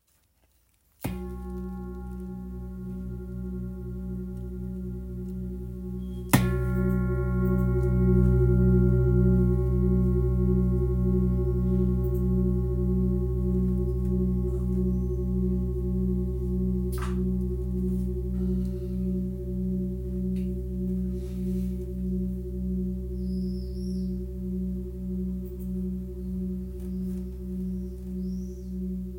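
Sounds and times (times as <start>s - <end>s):
large 8.3kg bowl ringing in B: 1.0s - 29.1s.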